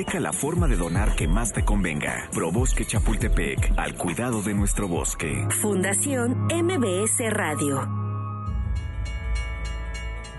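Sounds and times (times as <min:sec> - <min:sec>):
speech: 0:00.0 - 0:08.0
train rolling past: 0:08.5 - 0:10.3.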